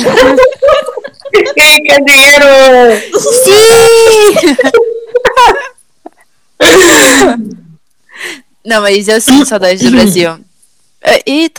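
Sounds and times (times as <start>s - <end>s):
laughter: 0.0s - 1.8s, 3.9s - 5.8s
speech: 1.8s - 4.9s, 8.7s - 11.5s
person coughing: 6.6s - 7.6s.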